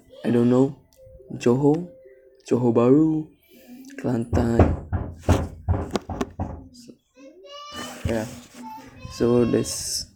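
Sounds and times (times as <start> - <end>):
child calling out and talking: 0.0 - 0.6, 7.1 - 8.0, 8.6 - 10.1
speech: 0.2 - 3.4, 4.0 - 4.9, 8.1 - 8.4, 9.2 - 10.1
heavy knocks on a door: 4.3 - 6.7.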